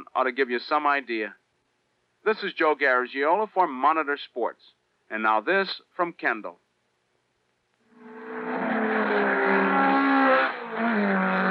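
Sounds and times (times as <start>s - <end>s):
speech: 0.2s - 1.4s, 2.2s - 6.6s
high-performance car engine revving: 7.9s - 11.4s.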